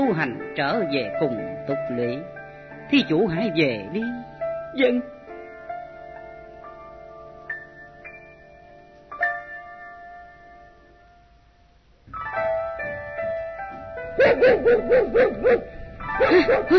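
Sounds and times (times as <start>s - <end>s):
speech: 0.1s - 5.2s, 14.6s - 16.7s
dog barking: 14.2s - 16.7s.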